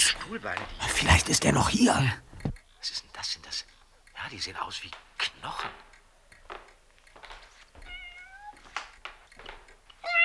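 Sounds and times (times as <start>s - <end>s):
speech: 0.1s - 2.2s, 2.8s - 5.9s
cat meowing: 7.8s - 8.6s, 10.0s - 10.2s.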